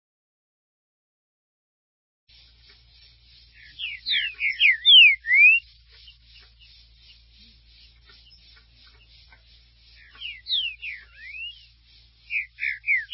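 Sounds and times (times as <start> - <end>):
Green-winged saltator song: 2.3 - 13.1.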